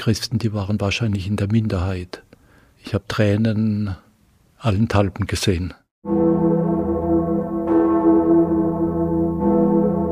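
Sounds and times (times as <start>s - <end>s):
speech: 0.0s - 2.2s, 2.8s - 4.0s, 4.6s - 6.2s
church bells ringing in a full resonant peal: 6.0s - 10.1s.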